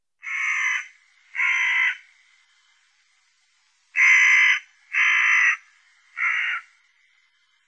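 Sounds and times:
hooded crow calling: 0.2 - 2.1, 4.0 - 6.7.

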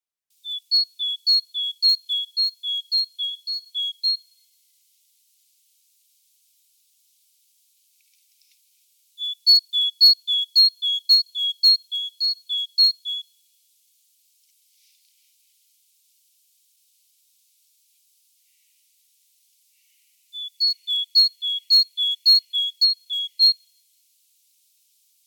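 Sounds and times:
great tit calling: 0.5 - 4.2, 9.2 - 13.2, 20.4 - 23.6.

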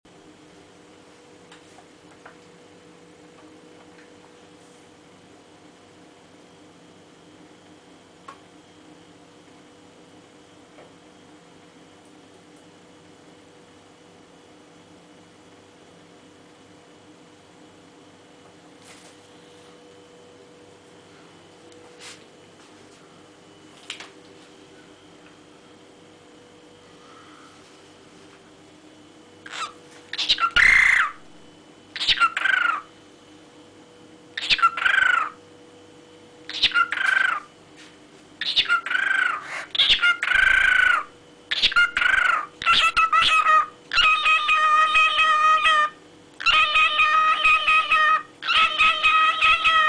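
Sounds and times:
cockatiel parrot voice: 29.4 - 32.9, 34.4 - 35.4, 36.5 - 37.5, 38.4 - 49.8.

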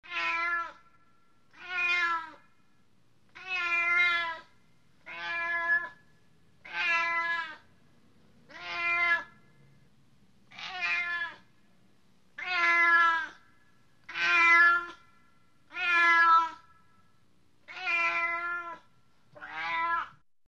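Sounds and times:
cat voice: 0.0 - 0.8, 1.5 - 2.4, 3.3 - 6.0, 6.6 - 7.6, 8.5 - 9.4, 10.5 - 11.5, 12.4 - 13.4, 14.0 - 15.0, 15.7 - 16.7, 17.7 - 20.2.

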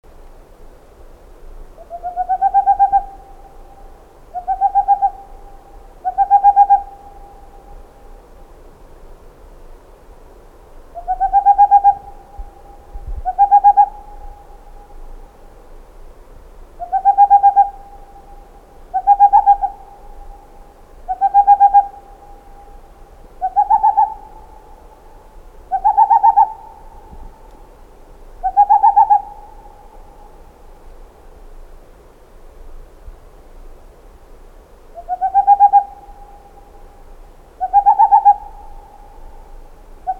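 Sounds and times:
boreal owl voice: 1.8 - 8.2, 10.9 - 15.6, 16.8 - 27.7, 28.3 - 30.6, 34.9 - 40.1.

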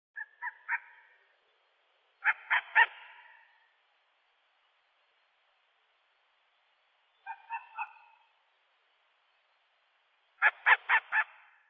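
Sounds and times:
long-eared owl calling: 0.2 - 1.2, 2.2 - 3.7, 7.2 - 8.3, 10.4 - 11.6.

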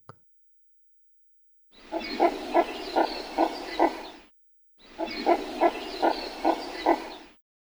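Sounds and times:
red-crested pochard calling: 1.8 - 4.2, 4.9 - 7.2.

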